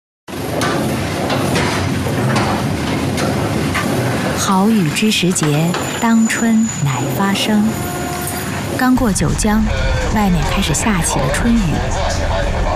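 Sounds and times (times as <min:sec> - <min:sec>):
train wheels clattering on the track: 0:00.3 - 0:06.5
train rolling across a road-rail bridge over the Yangtze River: 0:00.4 - 0:12.7
speech: 0:04.7 - 0:07.9, 0:08.8 - 0:12.7.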